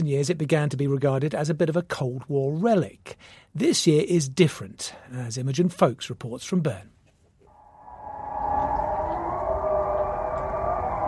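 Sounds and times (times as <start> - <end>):
speech: 0.0 - 6.9
civil defense warning siren wailing in Switzerland during yearly test: 7.5 - 11.0
faint rumble: 7.6 - 11.0.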